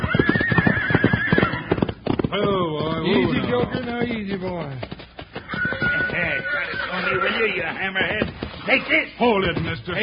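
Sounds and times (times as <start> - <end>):
spooked horse neighing: 0.0 - 4.1, 5.3 - 8.9
horse hooves thudding and stamping: 0.0 - 10.0
speech: 2.4 - 4.9, 6.2 - 10.0.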